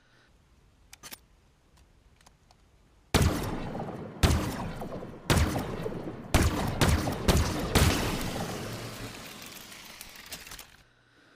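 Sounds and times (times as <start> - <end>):
Covenant Stalker rifle shots in a video game: 3.2 - 10.7.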